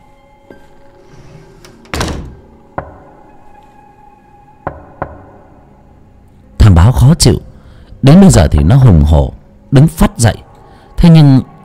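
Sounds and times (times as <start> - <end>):
faint hum: 0.0 - 11.6
knocking on a door: 2.8 - 3.1, 4.6 - 5.3
speech: 7.0 - 11.5.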